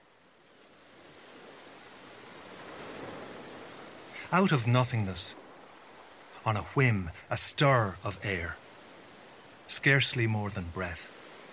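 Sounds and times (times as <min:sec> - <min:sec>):
ocean surf: 0:00.0 - 0:11.5
speech: 0:04.3 - 0:05.4, 0:06.4 - 0:08.6, 0:09.7 - 0:11.2.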